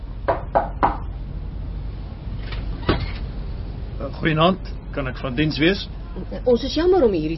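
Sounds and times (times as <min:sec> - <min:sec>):
low steady rumble: 0:00.0 - 0:07.3
knocking on a door: 0:00.3 - 0:01.1
speech: 0:04.1 - 0:07.3.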